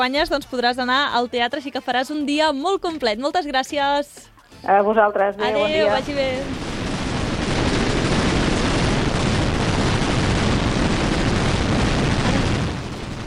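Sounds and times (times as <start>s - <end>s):
speech: 0.0s - 6.7s
firecracker barrage of a tronada: 5.4s - 13.2s.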